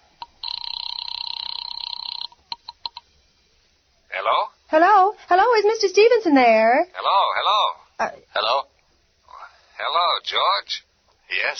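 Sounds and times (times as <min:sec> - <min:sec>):
warbling electronic telephone ring tone heard over the line: 0:00.2 - 0:03.1
speech: 0:04.7 - 0:08.7, 0:10.2 - 0:11.5.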